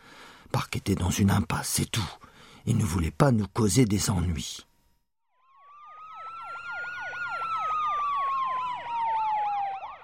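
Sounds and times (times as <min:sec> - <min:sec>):
speech: 0:00.6 - 0:04.7
wailing police car and ambulance sirens: 0:05.4 - 0:10.0.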